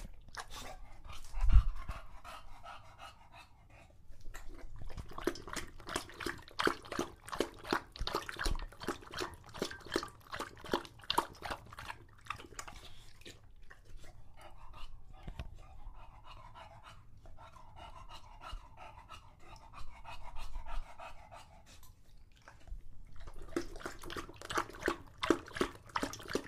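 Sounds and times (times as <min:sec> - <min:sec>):
English Bulldog lapping water from a water bowl: 0:00.0 - 0:01.4, 0:04.3 - 0:18.0, 0:21.8 - 0:26.4.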